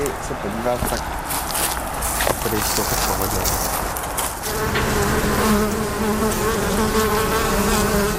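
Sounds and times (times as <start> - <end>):
speech: 0.3 - 1.4, 2.5 - 3.9, 4.6 - 8.1
swarm of honeybees buzzing beside an apiary: 2.4 - 8.1.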